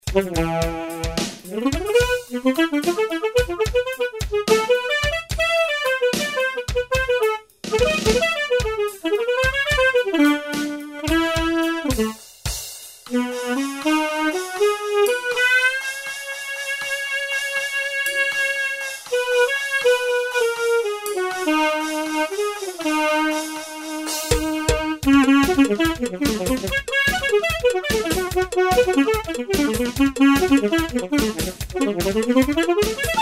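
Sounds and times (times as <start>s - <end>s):
alto saxophone: 0.0s - 12.2s, 13.1s - 33.1s.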